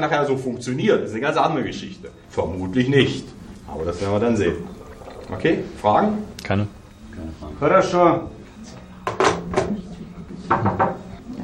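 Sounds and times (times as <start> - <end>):
speech: 0.0 - 8.4
low hum: 0.0 - 11.4
knocking on a door: 10.5 - 11.0.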